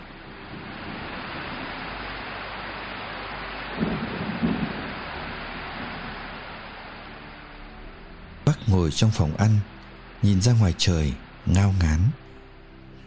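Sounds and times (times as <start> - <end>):
thunder rumble: 0.0 - 7.1
heavy rain: 0.0 - 13.0
speech: 8.7 - 12.2.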